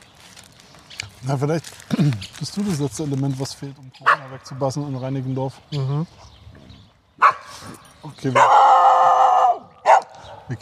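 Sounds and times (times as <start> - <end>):
speech: 1.2 - 6.3, 8.0 - 8.7
dog barking: 4.0 - 4.4, 7.2 - 7.6, 8.3 - 10.5.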